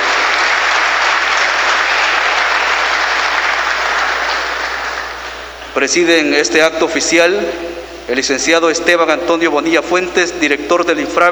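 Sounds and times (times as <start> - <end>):
audience applause: 0.0 - 5.6
speech: 5.8 - 11.3.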